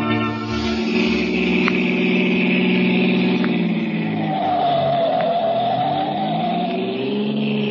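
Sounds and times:
car engine roaring at high speed: 0.2s - 7.6s.

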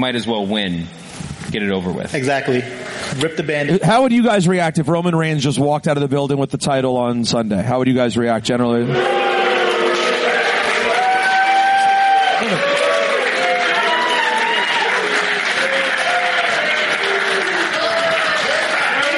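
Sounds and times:
speech: 0.0s - 9.2s
large crowd booing loudly: 8.8s - 19.1s
scattered clapping: 10.0s - 19.1s.

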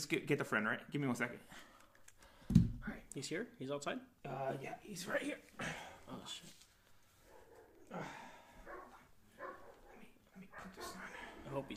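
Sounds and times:
speech: 0.0s - 1.8s, 2.5s - 6.6s, 7.9s - 8.2s, 10.6s - 11.7s
dogs barking: 7.2s - 7.9s, 8.6s - 11.7s.

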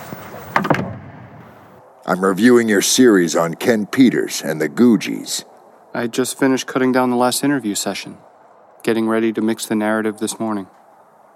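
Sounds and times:
door swinging shut: 0.0s - 1.7s
knocks: 0.5s - 1.5s
door thud: 0.5s - 1.7s
speech: 2.1s - 10.8s.

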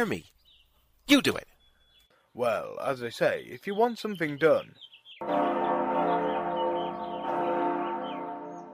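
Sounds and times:
speech: 0.0s - 0.3s, 1.1s - 1.5s, 2.4s - 5.6s
loud resonant bell at a very large door ringing: 5.2s - 8.7s.

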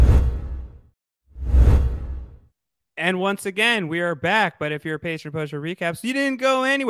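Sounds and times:
whoosh transition effect: 0.0s - 0.8s, 1.4s - 2.4s
speech: 3.0s - 6.8s.

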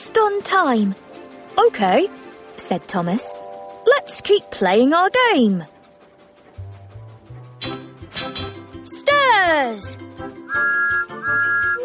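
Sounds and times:
speech: 0.0s - 3.4s, 4.0s - 5.7s, 9.4s - 10.9s
whistle blowing long steady blasts: 10.5s - 11.8s.

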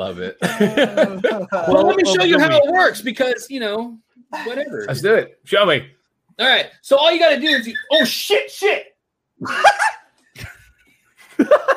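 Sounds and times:
speech: 0.0s - 10.5s, 11.4s - 11.7s
laughter: 0.4s - 2.9s, 9.4s - 11.7s
puppy yelping after paw run over: 7.6s - 8.1s.

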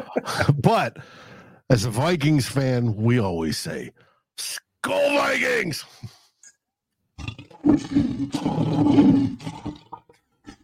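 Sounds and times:
speech: 0.2s - 6.2s, 7.6s - 9.8s
lion roaring: 7.2s - 10.0s.

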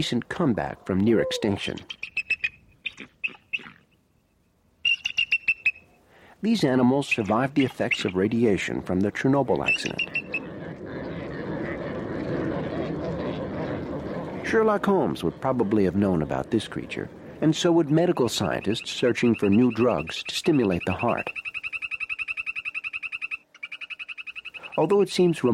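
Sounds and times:
speech: 0.0s - 2.1s, 6.4s - 10.3s, 14.5s - 21.4s, 24.8s - 25.5s
bald eagle high thin chittering calls: 1.1s - 4.0s, 4.8s - 5.9s, 7.0s - 8.9s, 9.5s - 11.8s, 15.5s - 25.5s
herd of reindeer grunting: 9.6s - 17.6s.

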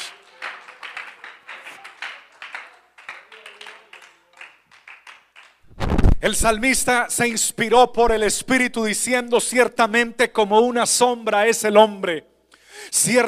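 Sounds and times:
church audience clapping during a sermon: 0.0s - 5.8s
speech: 6.2s - 12.3s, 13.0s - 13.2s.

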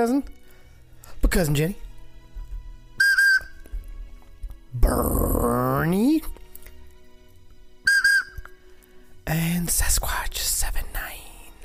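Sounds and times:
speech: 0.0s - 0.4s, 1.2s - 1.8s, 4.7s - 6.4s, 9.3s - 10.8s
short loud high-pitched whistle blast: 3.0s - 3.6s, 7.8s - 8.4s.

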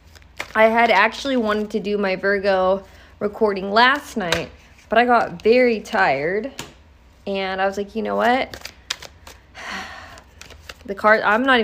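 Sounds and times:
tarot cards being shuffled: 0.0s - 1.7s, 3.9s - 6.0s, 8.0s - 11.6s
speech: 0.6s - 8.7s, 10.9s - 11.6s.

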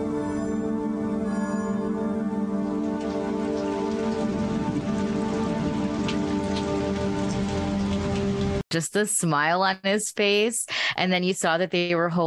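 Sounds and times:
brief tonal sounds: 0.2s - 2.6s
rain falling on a surface: 1.3s - 8.7s
speech: 8.7s - 12.2s.

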